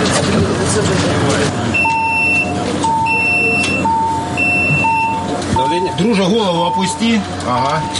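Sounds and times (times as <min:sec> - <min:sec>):
patient lift platform on an ambulance bus raising: 0:00.0 - 0:07.9
two-tone electronic warning beep of an ambulance bus lift: 0:01.7 - 0:07.9
speech: 0:06.0 - 0:07.9.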